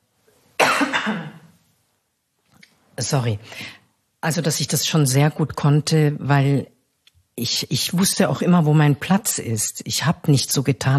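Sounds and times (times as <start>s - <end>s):
single sharp cough with rough breathy rasp: 0.6s - 1.6s
speech: 1.0s - 1.3s, 3.0s - 6.7s, 7.4s - 10.9s.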